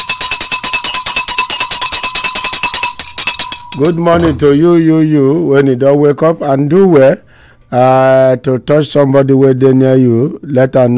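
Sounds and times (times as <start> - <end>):
bell ringing: 0.0 - 4.8
speech: 3.8 - 10.9.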